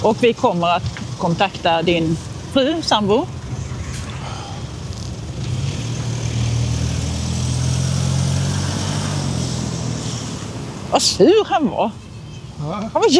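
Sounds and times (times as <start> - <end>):
speech: 0.0 - 3.4, 11.0 - 12.0, 12.6 - 13.1
road and wind noise: 0.0 - 13.1
car engine revving and driving off: 1.0 - 11.2.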